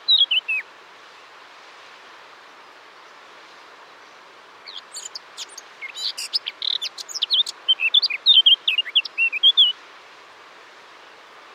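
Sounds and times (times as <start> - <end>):
Eurasian blackcap Sylvia atricapilla singing: 4.7 - 9.7.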